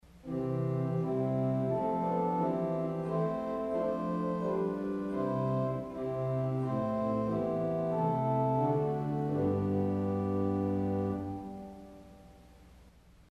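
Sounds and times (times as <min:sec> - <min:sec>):
organ with Geigen Diapason stop playing a hymn tune: 0:00.2 - 0:12.6.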